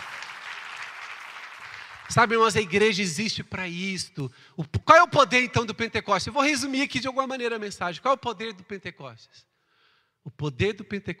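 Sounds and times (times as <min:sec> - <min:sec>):
audience applause: 0:00.0 - 0:02.8
speech: 0:02.1 - 0:09.5, 0:10.2 - 0:11.1.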